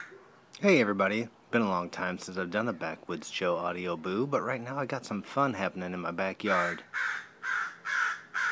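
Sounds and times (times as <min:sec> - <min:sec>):
mother crow cawing in a backyard: 0:00.0 - 0:00.2, 0:06.5 - 0:08.5
speech: 0:00.6 - 0:07.2.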